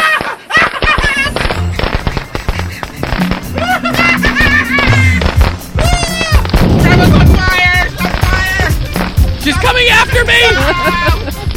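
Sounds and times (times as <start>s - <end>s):
laughter: 0.0s - 6.3s, 7.6s - 9.0s, 10.2s - 11.5s
fireworks crackling and popping: 0.0s - 11.5s
firework bangs: 0.1s - 9.6s
people shouting excitedly: 3.5s - 8.7s, 9.6s - 11.2s.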